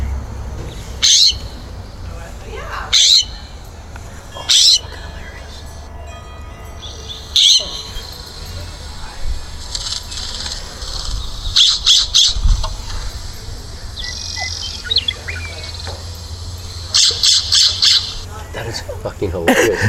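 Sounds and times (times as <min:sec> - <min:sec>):
scrub jay calls played from a bird app: 0:00.9 - 0:03.6, 0:04.2 - 0:05.9, 0:06.8 - 0:18.3
laughter: 0:18.6 - 0:19.8.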